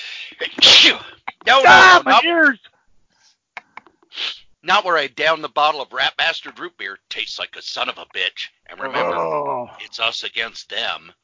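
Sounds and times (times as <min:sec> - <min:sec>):
loud exaggerated sneeze: 0:00.0 - 0:02.2
speech: 0:00.3 - 0:02.7, 0:04.6 - 0:11.2.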